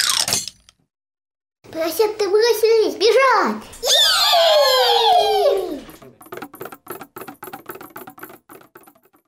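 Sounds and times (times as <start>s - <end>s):
speech: 1.8s - 5.1s
loud descending whistle: 3.8s - 5.9s.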